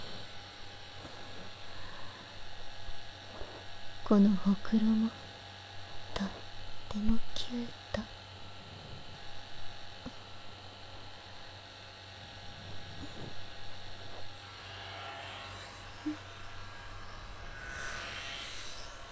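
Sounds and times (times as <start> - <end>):
hair dryer blowing with motor hum and whooshing airflow: 0.0 - 4.0, 7.8 - 19.0
speech: 4.1 - 5.2, 7.0 - 8.2.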